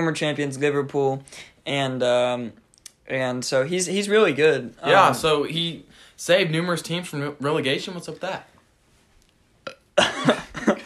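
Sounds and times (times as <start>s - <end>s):
speech: 0.0s - 8.5s, 10.0s - 10.4s
person burping: 9.6s - 10.8s.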